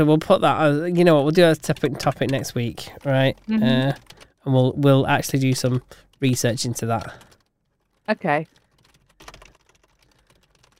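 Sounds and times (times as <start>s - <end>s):
speech: 0.0s - 7.3s, 8.1s - 8.6s
typing on a computer keyboard: 1.6s - 4.4s, 5.1s - 10.7s.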